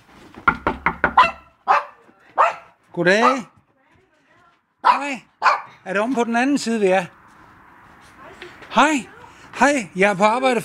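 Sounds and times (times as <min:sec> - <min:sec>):
small dog barking: 0:01.2 - 0:03.6, 0:04.8 - 0:05.8
speech: 0:03.0 - 0:03.5, 0:05.0 - 0:07.2, 0:08.8 - 0:10.6.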